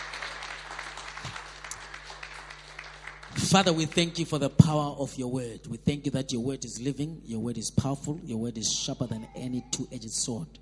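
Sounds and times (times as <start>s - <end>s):
room full of people applauding: 0.0s - 4.3s
speech: 3.4s - 10.5s.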